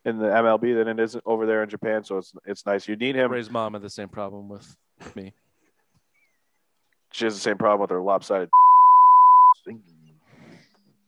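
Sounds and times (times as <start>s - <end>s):
speech: 0.0s - 5.4s, 7.1s - 8.6s, 9.6s - 10.0s
censor beep: 8.5s - 9.6s.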